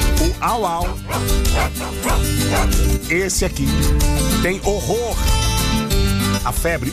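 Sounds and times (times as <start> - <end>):
person imitating dog barking: 0.2 - 2.8
speech: 0.4 - 5.4, 6.4 - 6.9.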